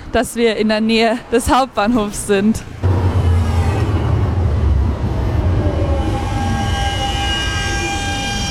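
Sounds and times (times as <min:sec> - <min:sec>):
speech: 0:00.1 - 0:02.8
rumble inside a moving tram: 0:00.2 - 0:08.4
tram electric motor whine: 0:04.7 - 0:08.4.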